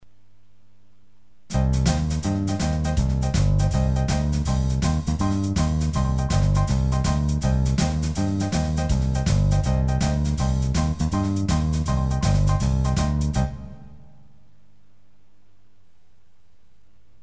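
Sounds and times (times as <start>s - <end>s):
fast jive boogie music: 1.5s - 14.0s.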